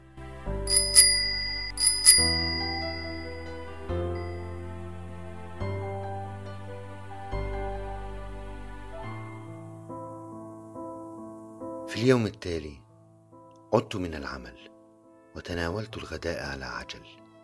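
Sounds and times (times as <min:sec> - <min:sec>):
low sustained tone: 0:00.0 - 0:10.0
bright bell rung on arriving home: 0:00.7 - 0:04.9
speech: 0:12.0 - 0:12.8, 0:13.7 - 0:14.7, 0:15.4 - 0:17.2.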